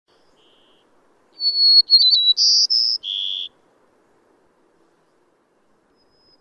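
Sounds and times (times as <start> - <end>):
bird calling with clear high whistled notes: 1.4 - 3.6, 6.0 - 6.4.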